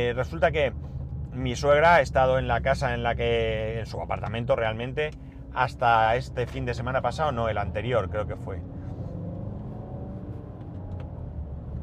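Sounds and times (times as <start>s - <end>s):
loud car engine rumbling outside: 0.0s - 11.8s
speech: 0.1s - 8.7s.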